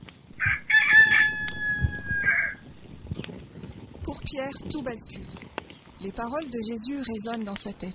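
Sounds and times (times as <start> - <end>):
rooster crowing: 0.4 - 2.6
speech: 4.3 - 5.4, 6.0 - 7.9.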